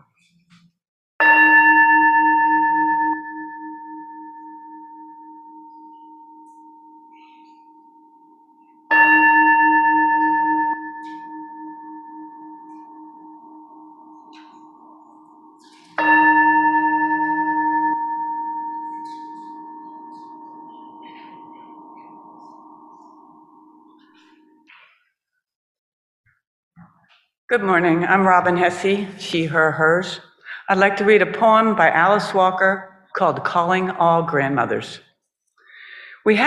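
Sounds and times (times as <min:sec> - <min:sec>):
worship bell struck: 0:01.2 - 0:24.8
speech: 0:27.6 - 0:35.1, 0:36.2 - 0:36.4.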